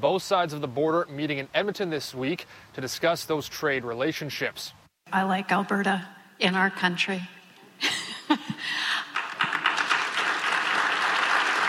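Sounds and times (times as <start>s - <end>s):
speech: 0.0s - 8.9s
delegates applauding at an economic summit: 8.9s - 11.6s.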